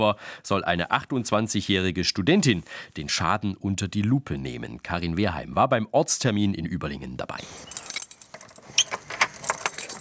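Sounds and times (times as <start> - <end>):
speech: 0.0 - 7.8
key turned hard in a gallery door lock: 7.7 - 9.9.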